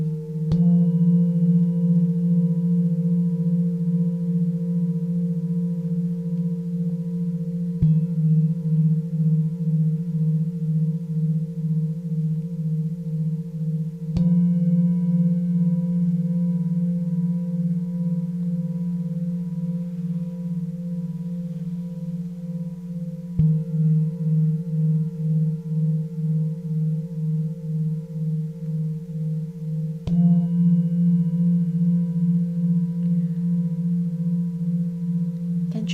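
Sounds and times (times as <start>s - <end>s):
singing bowl struck: 0.0s - 35.9s.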